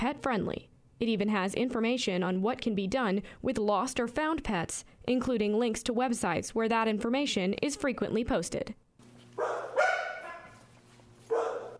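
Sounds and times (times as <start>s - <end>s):
speech: 0.0s - 8.8s, 9.4s - 10.0s
dogs barking at an animal shelter: 9.3s - 10.7s, 11.3s - 11.7s.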